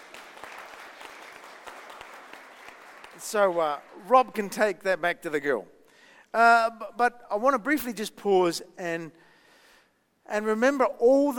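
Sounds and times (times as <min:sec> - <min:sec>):
audience clapping: 0:00.0 - 0:04.6
speech: 0:03.2 - 0:09.3, 0:10.3 - 0:11.3.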